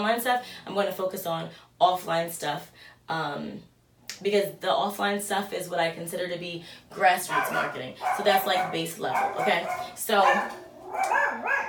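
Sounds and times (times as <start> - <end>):
speech: 0.0 - 11.6
dogs barking and yipping: 7.3 - 11.6.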